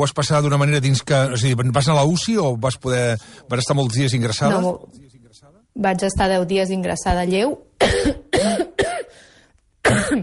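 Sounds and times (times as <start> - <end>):
speech: 0.0 - 8.6
woman coughing from a recent illness: 7.8 - 9.1, 9.8 - 10.2.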